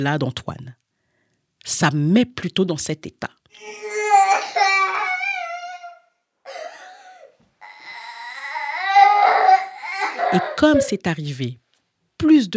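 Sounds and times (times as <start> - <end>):
speech: 0.0 - 0.8, 1.6 - 3.8, 10.3 - 11.6, 12.2 - 12.5
child crying and sobbing: 3.5 - 10.9.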